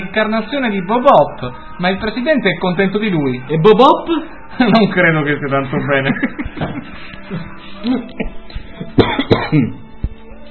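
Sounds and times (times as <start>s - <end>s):
speech: 0.2s - 8.4s, 9.0s - 9.8s
laughter: 4.6s - 8.8s
person coughing sharply: 8.0s - 9.8s.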